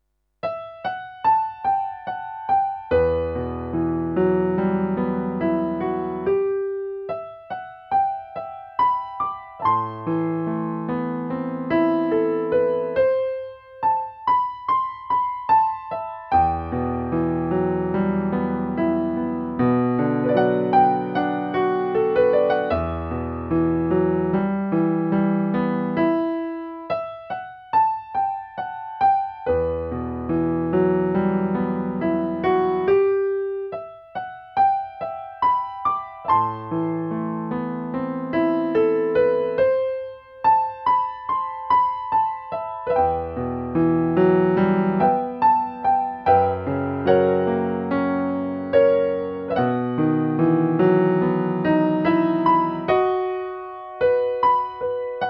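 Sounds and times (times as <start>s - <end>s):
anime theme piano piece: 0.4s - 55.2s.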